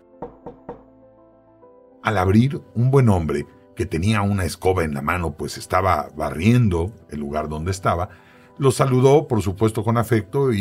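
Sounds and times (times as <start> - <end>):
knocking on the wooden door of a poor-looking house: 0.1 - 1.0
speech: 2.1 - 10.5.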